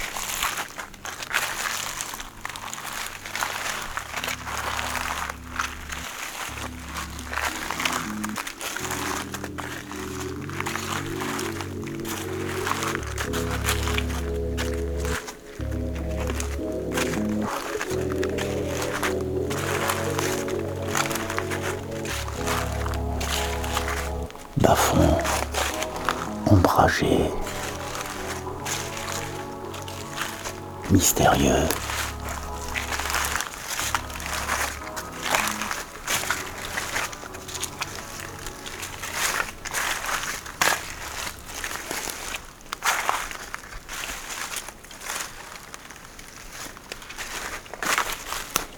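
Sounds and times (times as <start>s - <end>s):
dry dead leaves of beech chestnut and birch crackling and rustling in woods: 0.0s - 48.7s
sustained musical backdrop with slowly shifting chords: 4.0s - 42.0s
speech: 31.2s - 31.8s.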